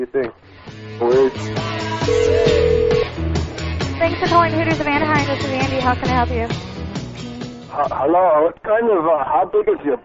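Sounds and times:
speech: 0.0 - 2.5, 4.1 - 10.0
telephone keypad tones over a phone line dialing a calling card: 2.1 - 3.0.

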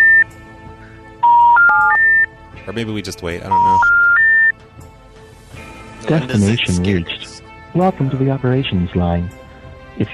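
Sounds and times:
electronic touch-tone telephone tones on a phone line: 0.0 - 0.3, 1.2 - 2.3, 3.5 - 4.5
speech: 2.6 - 4.0, 6.1 - 9.4, 10.0 - 10.1.

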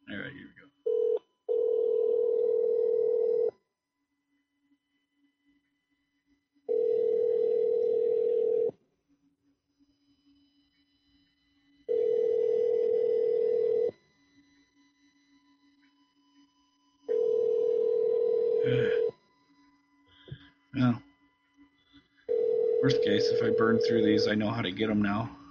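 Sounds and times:
ringback tone of an outgoing telephone call: 0.8 - 3.6, 6.7 - 8.7, 11.9 - 14.0, 17.1 - 19.1, 22.3 - 25.3
speech: 23.4 - 25.4.

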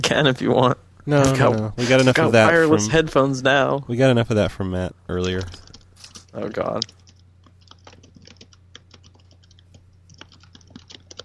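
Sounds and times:
speech: 0.0 - 5.6, 6.4 - 7.0
low steady hum: 0.0 - 11.2
typing on a computer keyboard: 5.2 - 5.8, 6.8 - 11.2.

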